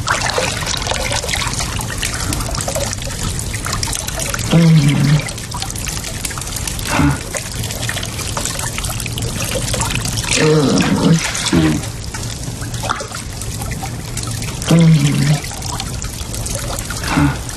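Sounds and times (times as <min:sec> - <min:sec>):
water pouring and splashing over a person: 0:00.0 - 0:17.5
short voiced sounds from a person under water: 0:10.3 - 0:11.9, 0:14.7 - 0:15.5.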